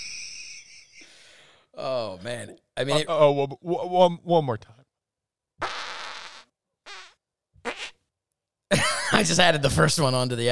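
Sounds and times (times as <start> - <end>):
speech: 1.8 - 4.8, 9.2 - 10.5
raspy fart sounds: 5.6 - 8.0.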